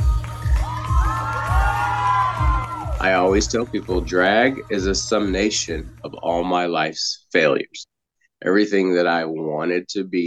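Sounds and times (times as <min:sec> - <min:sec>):
crowd roaring, cheering and whooping: 0:00.0 - 0:05.2
steady thumping bass beat: 0:00.0 - 0:06.4
speech: 0:03.0 - 0:10.2.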